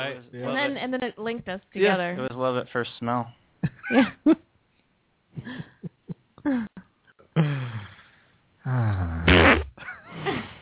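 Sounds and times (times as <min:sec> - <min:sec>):
speech: 0:00.1 - 0:04.4, 0:06.4 - 0:06.7
loud drawn-out fart: 0:08.7 - 0:09.8.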